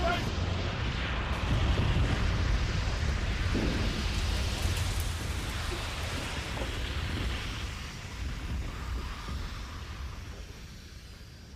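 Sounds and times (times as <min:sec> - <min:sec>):
burning oil platform collapsing: 0:00.0 - 0:11.5
deep rumble: 0:00.0 - 0:11.5
loud continuous roar of burning oil platform: 0:00.0 - 0:11.5.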